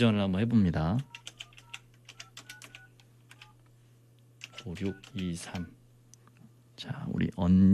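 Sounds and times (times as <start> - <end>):
speech: 0.0 - 1.2, 4.6 - 5.8, 6.8 - 7.7
steady low electrical hum: 0.0 - 7.7
landline telephone keypad dialing beeps: 1.0 - 3.6, 4.4 - 5.7.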